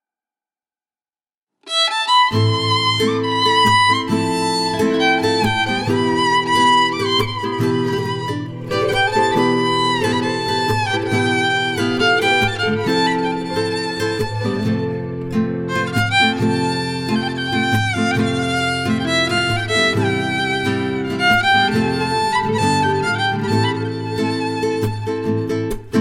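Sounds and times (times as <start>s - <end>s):
guitar: 1.6s - 25.9s
violin: 1.6s - 25.9s.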